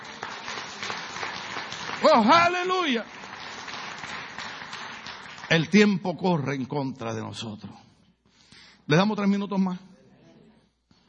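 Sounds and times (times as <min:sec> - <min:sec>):
dense audience applause: 0:00.0 - 0:05.9
speech: 0:02.0 - 0:03.2, 0:05.5 - 0:07.8, 0:08.9 - 0:09.9.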